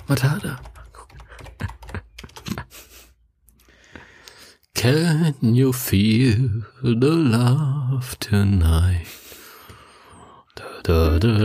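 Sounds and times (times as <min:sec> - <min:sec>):
typing on a computer keyboard: 0:00.0 - 0:02.7
speech: 0:00.1 - 0:00.8, 0:04.8 - 0:09.2, 0:10.8 - 0:11.4
faint breathing: 0:02.8 - 0:04.7, 0:09.1 - 0:10.8.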